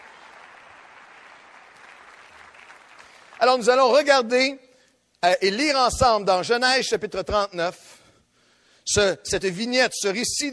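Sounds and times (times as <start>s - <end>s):
congregation applauding: 0.0s - 3.8s
speech: 3.4s - 4.6s, 5.2s - 8.0s, 8.8s - 10.5s.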